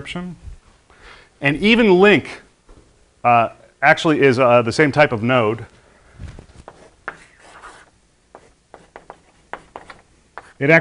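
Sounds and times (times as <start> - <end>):
speech: 0.0 - 0.5, 1.1 - 2.4, 3.2 - 6.3, 10.6 - 10.7
drawing on a board during a programming lecture: 6.6 - 10.7.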